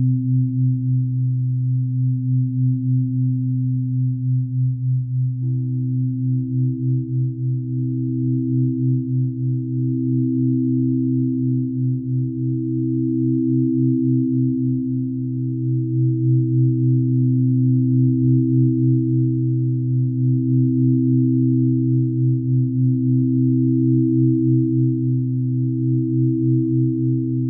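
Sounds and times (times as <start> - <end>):
singing bowls humming in low sustained drone: 0.0 - 27.4.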